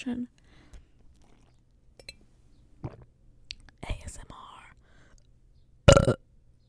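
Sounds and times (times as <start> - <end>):
speech: 0.0 - 0.4
loud burp: 5.9 - 6.2.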